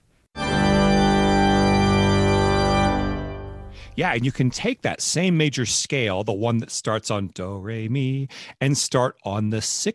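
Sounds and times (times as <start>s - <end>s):
major chord played on an instrument: 0.4s - 4.0s
speech: 4.0s - 9.9s.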